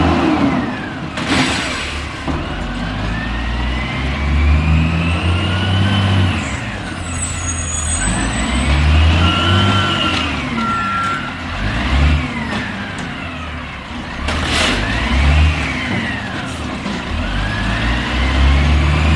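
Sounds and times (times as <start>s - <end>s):
garbage truck heavy engine revving: 0.0s - 19.1s
thin high squeal: 6.4s - 11.6s.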